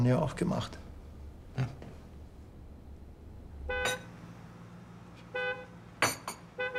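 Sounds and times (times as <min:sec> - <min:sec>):
speech: 0:00.0 - 0:00.8, 0:01.6 - 0:01.8
delivery vehicle low engine rumble: 0:00.0 - 0:06.7
delivery vehicle horn honking: 0:03.7 - 0:04.1, 0:05.3 - 0:05.8, 0:06.5 - 0:06.7.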